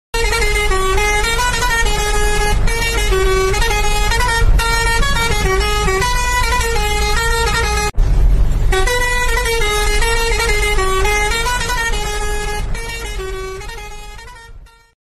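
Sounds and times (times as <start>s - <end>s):
truck horn: 0.2s - 15.0s.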